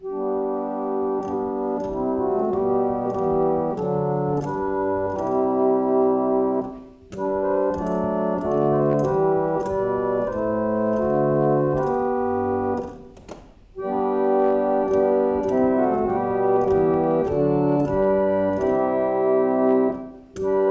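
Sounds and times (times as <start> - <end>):
harmonium: 0.0 - 13.2, 13.8 - 20.6.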